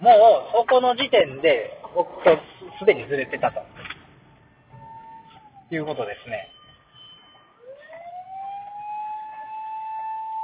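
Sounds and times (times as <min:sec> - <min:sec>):
speech: 0:00.2 - 0:03.8, 0:05.7 - 0:06.6
passing fire engine siren wailing: 0:02.7 - 0:10.4.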